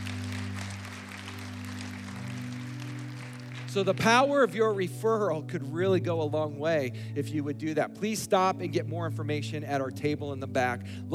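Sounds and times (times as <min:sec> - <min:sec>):
congregation applauding: 0:00.0 - 0:04.8
speech: 0:03.7 - 0:11.1.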